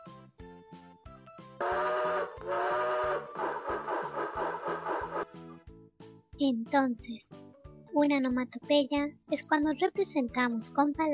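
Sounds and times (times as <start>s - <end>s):
speech: 1.6s - 2.6s, 6.4s - 11.1s
steam train whistle: 1.6s - 5.3s
rapid pulsing chug-like pattern: 3.2s - 5.2s.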